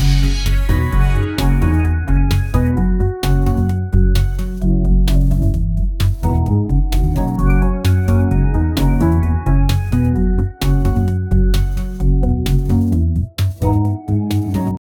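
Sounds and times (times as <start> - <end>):
upbeat positive happy music: 0.0 - 14.8.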